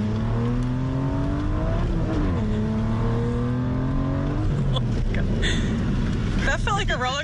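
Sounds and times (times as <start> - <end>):
luxury sports car engine accelerating hard on test drive: 0.0 - 7.0
speech: 6.6 - 7.2.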